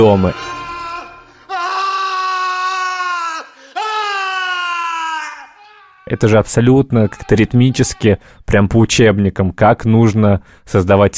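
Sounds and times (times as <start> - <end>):
speech: 0.0 - 0.6, 6.1 - 11.1
man in a film scene screaming in horror: 0.0 - 8.2.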